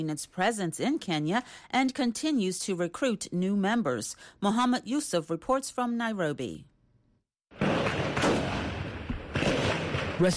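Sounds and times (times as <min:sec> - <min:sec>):
speech: 0:00.0 - 0:06.7
heavy gunfire exchange between a gunman and security forces at a police station: 0:07.5 - 0:10.3.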